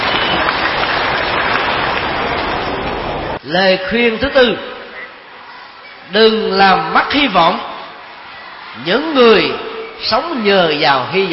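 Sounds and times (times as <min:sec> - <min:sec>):
audience applause: 0:00.0 - 0:03.4
speech: 0:03.5 - 0:04.7, 0:06.1 - 0:07.7, 0:08.8 - 0:11.3.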